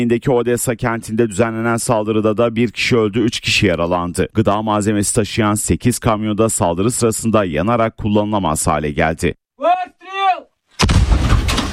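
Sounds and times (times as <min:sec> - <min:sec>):
speech: 0:00.0 - 0:09.8
Ukrainian howitzer artillery fire blast and rumbling roar in the Donetsk region: 0:10.8 - 0:11.7.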